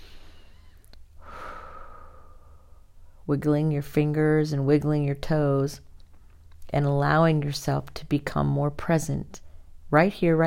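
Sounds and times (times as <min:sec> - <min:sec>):
long deep breath during a guided relaxation: 0:00.0 - 0:03.2
speech: 0:03.3 - 0:05.9, 0:06.7 - 0:10.4.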